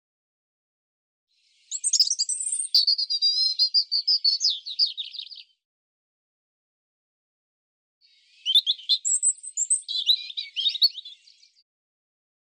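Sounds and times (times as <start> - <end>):
European robin song with whistled opening and trilling warble: 1.5 - 5.6, 8.0 - 11.6.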